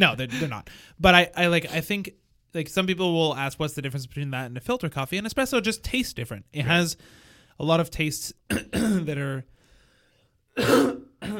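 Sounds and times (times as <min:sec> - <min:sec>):
speech: 0:00.0 - 0:09.6, 0:10.6 - 0:11.3
person clearing throat: 0:08.5 - 0:09.1, 0:10.6 - 0:11.3.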